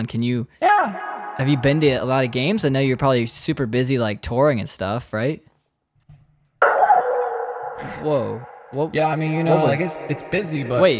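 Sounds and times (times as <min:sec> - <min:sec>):
speech: 0:00.0 - 0:05.5, 0:07.8 - 0:10.9
dog barking into the microphone: 0:06.6 - 0:08.0.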